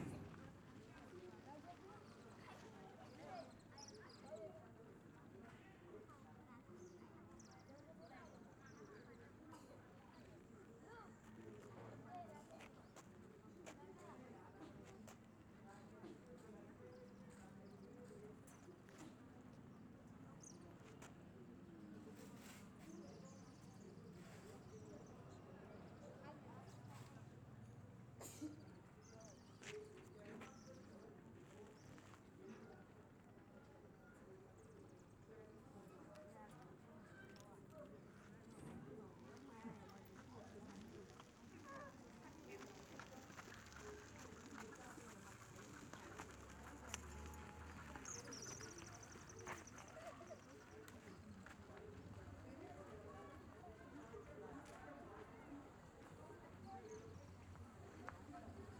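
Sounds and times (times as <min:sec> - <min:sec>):
African village ambience outside a school in daytime: 0:00.0 - 0:58.7.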